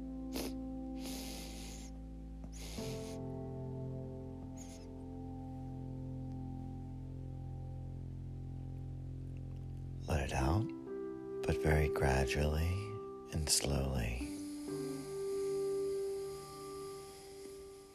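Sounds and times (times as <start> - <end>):
deep breaths drawn in during a breathing exercise: 0.3 - 3.4, 14.2 - 17.9
sustained drone of held tones: 3.3 - 17.9
speech: 11.6 - 14.3.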